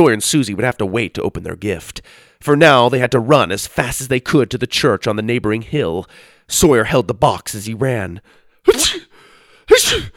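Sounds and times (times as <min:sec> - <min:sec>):
speech: 0:00.0 - 0:09.1, 0:09.8 - 0:10.1
person sneezing while running: 0:08.7 - 0:10.1.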